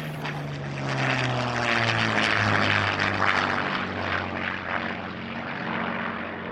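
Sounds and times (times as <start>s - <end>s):
piston aero engine of propeller aircraft running: 0.0s - 6.5s.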